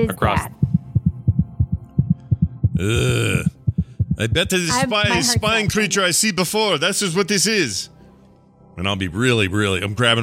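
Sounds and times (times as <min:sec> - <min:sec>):
speech: 0:00.0 - 0:00.6, 0:02.8 - 0:03.6, 0:04.2 - 0:08.0, 0:08.8 - 0:10.2
rapid heartbeat sound effect: 0:00.0 - 0:05.8.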